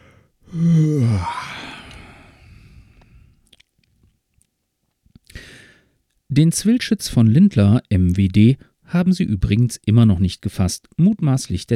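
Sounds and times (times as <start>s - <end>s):
speech: 0.5s - 1.4s, 6.4s - 11.7s
tired person yawning: 0.5s - 3.0s.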